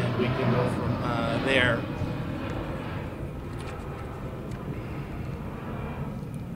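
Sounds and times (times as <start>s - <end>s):
airplane engine roar passing overhead: 0.0s - 6.5s
speech: 0.7s - 2.0s.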